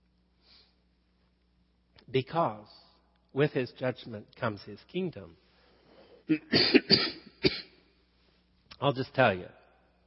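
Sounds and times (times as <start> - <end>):
speech: 2.1 - 5.4, 6.3 - 7.7, 8.8 - 9.6
harsh throaty coughs with throat-clearing quality: 6.3 - 7.8.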